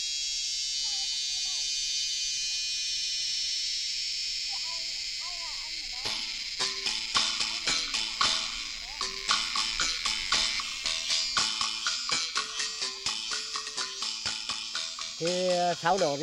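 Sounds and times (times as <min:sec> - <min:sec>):
cicadas buzzing in summer heat: 0:00.0 - 0:16.2
louder rasping pulses: 0:00.5 - 0:16.2
faint chirping calls: 0:04.5 - 0:16.2
speech: 0:15.2 - 0:16.2.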